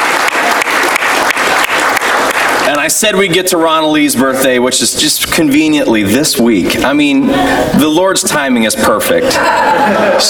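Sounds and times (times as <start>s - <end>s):
crowd applauding to greet a birthday: 0.0s - 3.2s
speech: 2.8s - 10.2s
laughter: 9.1s - 10.2s.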